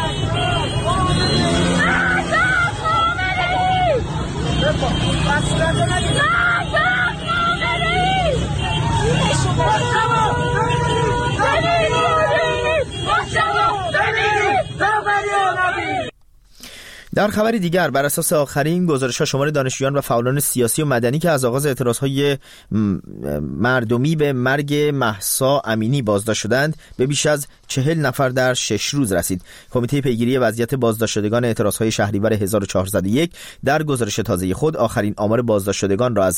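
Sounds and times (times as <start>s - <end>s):
large protest crowd chanting and shouting on a blocked highway at night: 0.0s - 16.1s
speech: 17.2s - 36.3s.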